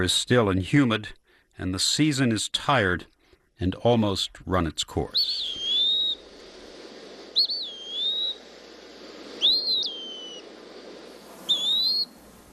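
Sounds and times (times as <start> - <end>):
speech: 0.0 - 5.6
bird's slow plaintive whistled call in the woods in late summer: 5.1 - 6.2, 7.3 - 8.5, 9.2 - 10.5, 11.4 - 12.2.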